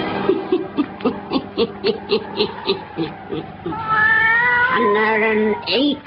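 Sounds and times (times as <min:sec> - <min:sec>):
laughter: 0:00.1 - 0:04.0
black cat meowing and yowling: 0:02.2 - 0:05.8.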